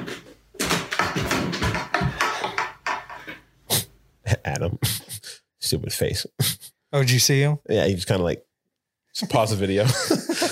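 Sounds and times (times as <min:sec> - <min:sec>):
heavy object tumbling down a flight of stairs: 0:00.0 - 0:03.4
speech: 0:04.6 - 0:05.0, 0:05.7 - 0:08.5, 0:09.2 - 0:10.5
laughter: 0:09.8 - 0:10.5.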